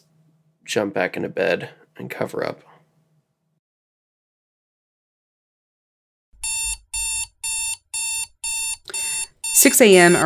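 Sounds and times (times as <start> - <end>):
speech: 0.7 - 2.7, 9.6 - 10.2
alarm clock ringing in electronic beeps: 6.4 - 10.2.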